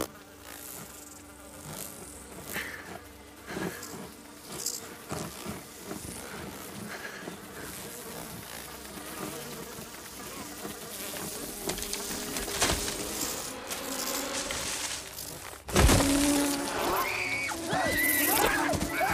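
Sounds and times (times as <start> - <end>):
swarm of stinging bees buzzing: 0.0 - 19.1
thumps and rustles: 11.4 - 19.1.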